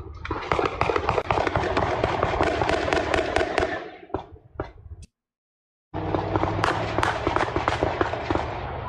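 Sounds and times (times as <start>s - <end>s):
AK-47 rifle gunfire: 0.3s - 4.1s, 6.0s - 8.8s.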